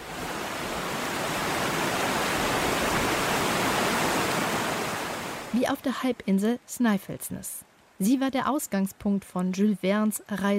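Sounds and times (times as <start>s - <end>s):
waterfall roaring: 0.0s - 6.2s
speech: 5.5s - 10.5s.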